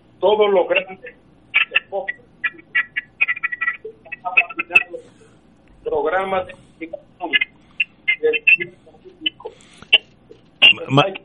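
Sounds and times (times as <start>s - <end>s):
speech: 0.2s - 2.6s, 5.8s - 7.5s, 8.2s - 8.8s, 10.7s - 11.2s
voice through a phone line on speakerphone: 4.1s - 7.5s, 8.1s - 9.6s, 10.6s - 11.2s.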